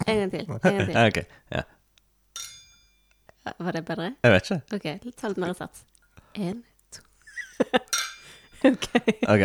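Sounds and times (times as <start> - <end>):
speech: 0.1 - 1.8, 3.5 - 7.9, 8.6 - 9.4
crystal glasses clinking in a toast: 2.4 - 3.2, 7.8 - 8.7
laughter: 8.6 - 9.4.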